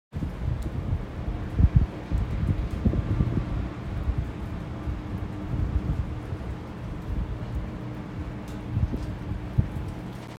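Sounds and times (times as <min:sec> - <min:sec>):
clean wind: 0:00.1 - 0:10.3.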